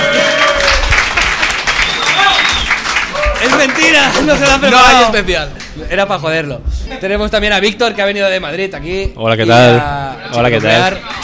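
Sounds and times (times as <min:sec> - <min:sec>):
applause: 0:00.0 - 0:04.6
high whistling tones: 0:01.7 - 0:02.9
speech: 0:03.6 - 0:11.2.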